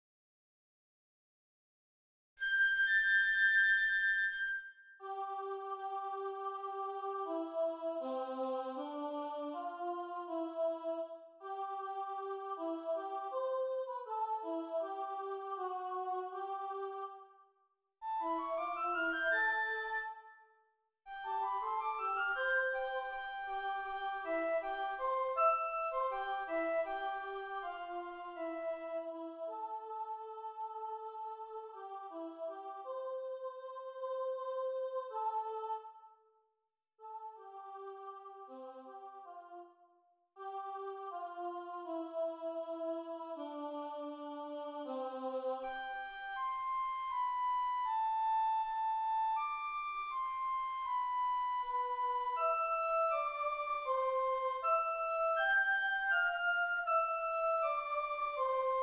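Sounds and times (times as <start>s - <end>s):
flute: 2.4s - 6.0s, 18.0s - 29.9s, 45.6s - 58.8s
choir: 5.0s - 20.3s, 21.1s - 36.2s, 37.0s - 39.8s, 40.4s - 58.8s.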